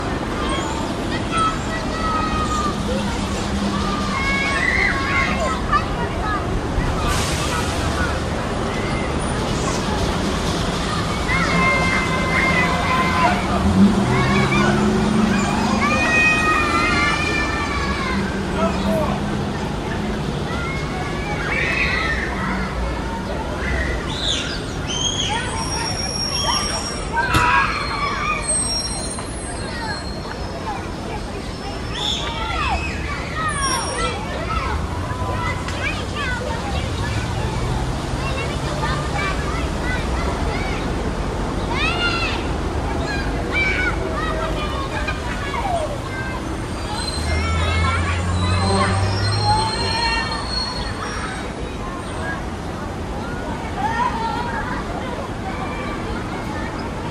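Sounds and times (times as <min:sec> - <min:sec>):
street ambience: 0:00.0 - 0:57.0.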